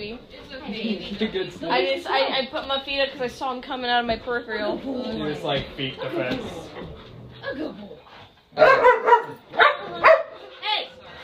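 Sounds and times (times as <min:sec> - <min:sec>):
speech: 0:00.2 - 0:06.9, 0:07.5 - 0:07.9, 0:08.6 - 0:09.4
dog barking: 0:08.6 - 0:10.5.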